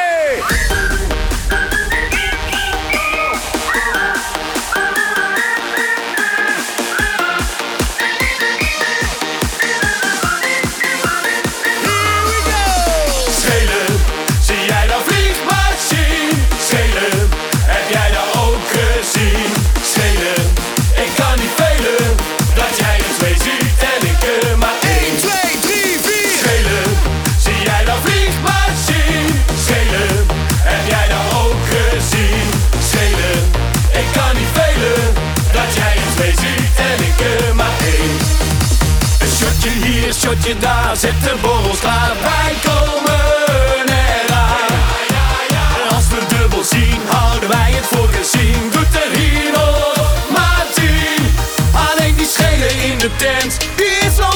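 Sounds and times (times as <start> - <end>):
new party pop single: 0.0 - 54.3.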